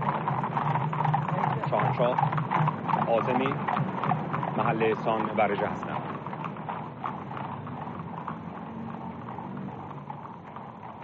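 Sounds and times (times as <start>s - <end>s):
mounted imperial guard cavalry horses trotting in a military review parade: 0.0s - 11.0s
speech: 1.9s - 3.9s, 4.6s - 6.0s.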